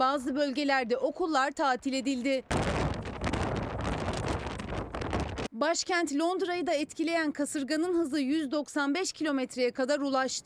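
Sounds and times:
speech: 0.0 - 2.6, 5.6 - 10.4
strong storm wind buffeting the microphone: 2.4 - 5.5.

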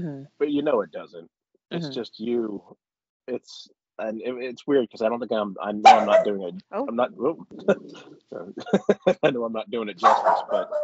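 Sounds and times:
speech: 0.0 - 10.8
person imitating a dog barking with yips and woofs: 0.4 - 1.1, 1.7 - 2.6, 3.3 - 10.8
person laughing: 1.8 - 2.6, 3.3 - 10.6.

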